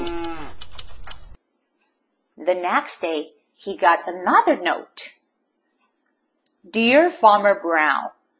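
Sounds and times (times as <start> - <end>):
cow mooing: 0.0 - 0.6
speech: 2.4 - 5.1, 6.6 - 8.2.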